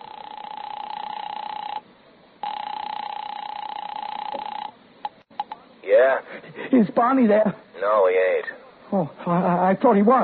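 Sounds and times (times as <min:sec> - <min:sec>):
steady electronic telephone line tone in a drugstore: 0:00.0 - 0:01.8, 0:02.4 - 0:04.8
speech: 0:06.0 - 0:10.2.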